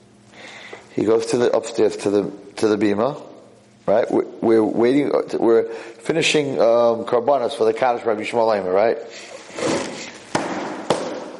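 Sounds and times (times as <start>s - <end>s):
murmur of room noise: 0.0s - 11.3s
speech: 1.0s - 3.3s, 3.9s - 10.1s
hand banging on a table: 10.3s - 11.3s.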